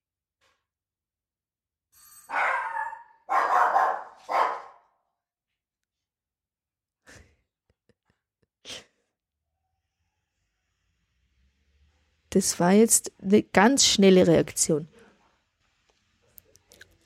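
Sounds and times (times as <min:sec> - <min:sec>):
doorbell ring: 0:02.0 - 0:02.7
dog barking: 0:02.3 - 0:05.0
speech: 0:12.4 - 0:15.0.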